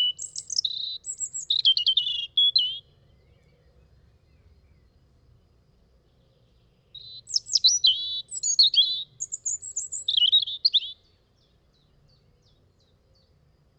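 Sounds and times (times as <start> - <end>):
European robin song: 0.0 - 13.4.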